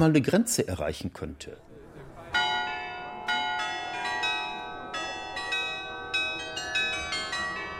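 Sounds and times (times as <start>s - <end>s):
speech: 0.0s - 1.7s
old town hall carillon bells ringing a melody on a market square: 2.3s - 7.7s.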